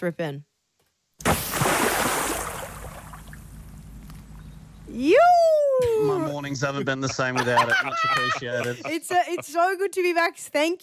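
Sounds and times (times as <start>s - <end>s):
speech: 0.0s - 0.5s, 4.9s - 10.8s
heavy object plunging into a river: 1.2s - 3.5s
churning, rushing river water: 1.2s - 3.8s
laughter: 5.8s - 9.9s.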